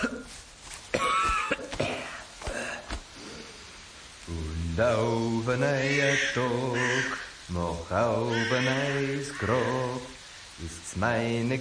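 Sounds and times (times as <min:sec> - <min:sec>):
person beside a grave coughing harshly: 0:00.0 - 0:00.3, 0:00.9 - 0:03.0
speech: 0:04.8 - 0:11.5.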